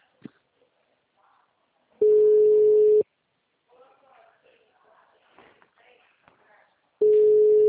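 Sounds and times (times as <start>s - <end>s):
telephone ringback tone: 2.0s - 3.0s, 7.0s - 7.6s.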